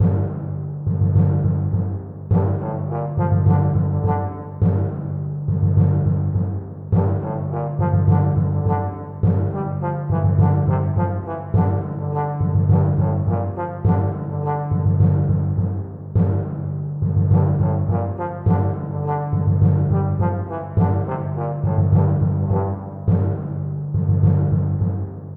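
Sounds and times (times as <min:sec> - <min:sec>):
chiptune timpani part of a duet: 0:00.0 - 0:25.3
chiptune trombone part of a duet: 0:02.3 - 0:05.0, 0:07.0 - 0:15.5, 0:17.3 - 0:23.4.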